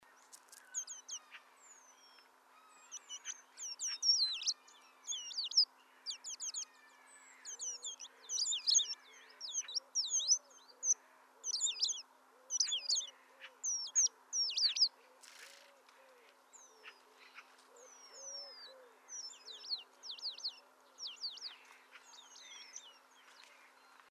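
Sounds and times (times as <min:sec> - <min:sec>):
Eurasian penduline tit calling: 0:00.0 - 0:24.0.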